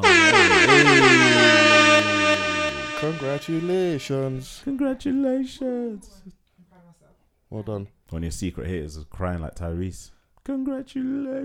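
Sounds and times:
air horn blast: 0.0s - 4.4s
speech: 3.2s - 6.4s, 7.5s - 11.4s.

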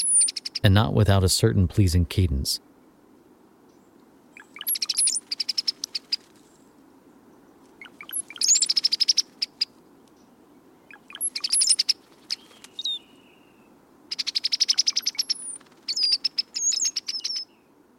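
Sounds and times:
speech: 0.6s - 2.7s
liquid gurgling bird song: 4.3s - 6.0s, 7.8s - 9.6s, 10.8s - 17.6s.

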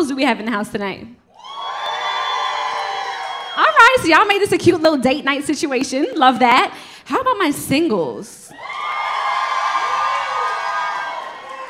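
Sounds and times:
speech: 0.0s - 1.2s, 3.9s - 8.7s
live crowd yelling and cheering: 1.3s - 4.2s, 8.5s - 11.6s.

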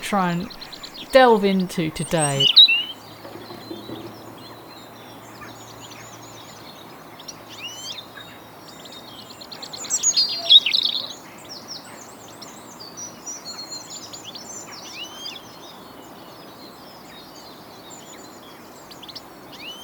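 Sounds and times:
speech: 0.1s - 2.6s
many wild birds singing and calling: 2.4s - 15.6s.

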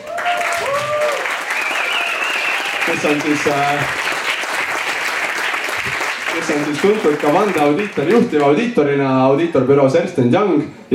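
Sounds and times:
audience applause: 0.0s - 8.8s
faint whistle-like tones: 1.5s - 2.8s
speech: 2.9s - 4.1s, 6.4s - 10.9s.

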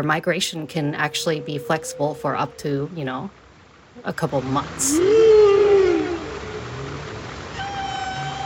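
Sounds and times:
speech: 0.0s - 3.4s, 4.0s - 5.5s
whale moaning call: 0.6s - 3.3s, 4.6s - 8.4s.

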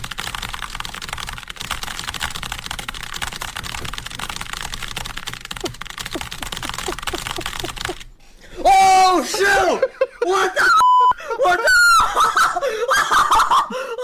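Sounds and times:
extremely rapid typing on a computer keyboard in a typing test: 0.0s - 8.2s
laughter: 5.6s - 14.0s.

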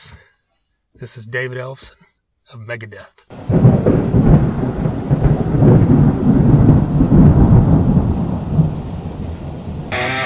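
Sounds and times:
speech: 1.0s - 4.5s
deep rolling thunder during a thunderstorm: 3.3s - 10.1s
steady rain during a thunderstorm: 3.3s - 10.1s.

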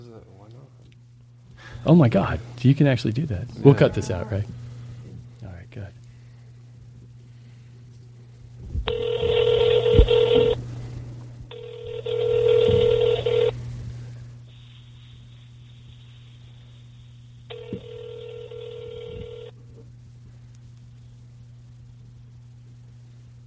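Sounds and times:
steady low electrical hum: 0.0s - 23.4s
speech: 1.8s - 4.6s
phone line ringing in buzzy bursts: 8.9s - 10.6s, 11.5s - 13.6s, 17.5s - 19.5s.

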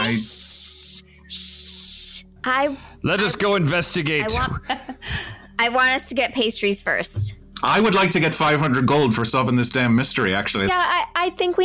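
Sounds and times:
female cat hissing: 0.0s - 2.2s
speech: 0.1s - 0.5s, 2.4s - 5.0s, 5.6s - 11.6s.

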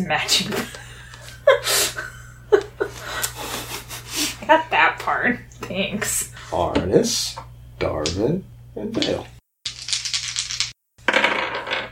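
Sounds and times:
speech: 0.0s - 0.8s, 1.5s - 2.6s, 4.5s - 9.3s
laughter: 0.5s - 4.7s
dice rolling on a table: 9.0s - 11.9s.

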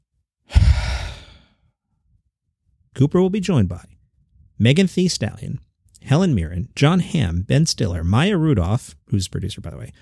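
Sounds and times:
group letting out a deep breath on a count of three: 0.5s - 1.6s
speech: 3.0s - 4.0s, 4.6s - 10.0s.

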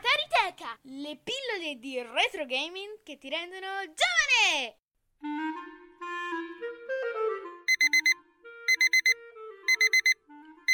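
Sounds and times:
speech: 0.6s - 6.5s
clock radio alarm loud rapid electronic beeps: 7.7s - 10.7s
clock radio alarm playing a soft melodic tune: 7.7s - 10.7s.

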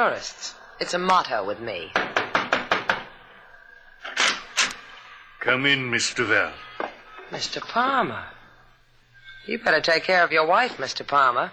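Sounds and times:
speech: 0.0s - 2.2s, 5.4s - 8.4s, 9.5s - 11.5s
knocking on a door: 1.9s - 3.2s.

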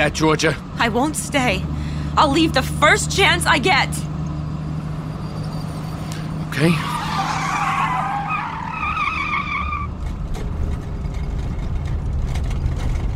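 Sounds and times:
speech: 0.0s - 4.1s, 6.6s - 7.0s
low steady car engine rumble: 0.0s - 13.1s
car tires squealing on an unmarked desert road: 5.1s - 10.2s.

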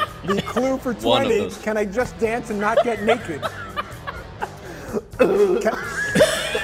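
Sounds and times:
person coughing and choking on a nacho chip: 0.0s - 0.8s, 3.1s - 6.6s
laughter: 0.0s - 1.5s, 2.2s - 6.6s
speech: 0.2s - 3.7s, 5.2s - 6.0s.

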